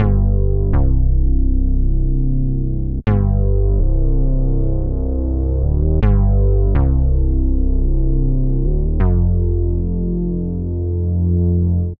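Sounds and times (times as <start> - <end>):
mini bass synth bassline in C minor: 0.0 - 11.9.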